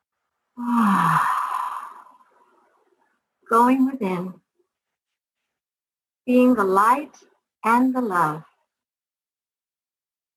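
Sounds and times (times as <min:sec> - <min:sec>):
deep breath drawn in and let out in a sigh: 0:00.6 - 0:02.8
speech: 0:03.5 - 0:04.4, 0:06.3 - 0:08.5.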